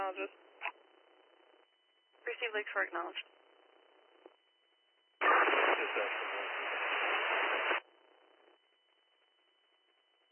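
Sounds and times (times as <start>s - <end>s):
speech: 0.1s - 0.5s, 2.4s - 3.4s, 6.0s - 6.2s
faint band-limited hiss: 5.2s - 7.8s
static from a garbled unit transmission on an EMS dispatch radio: 5.2s - 7.8s.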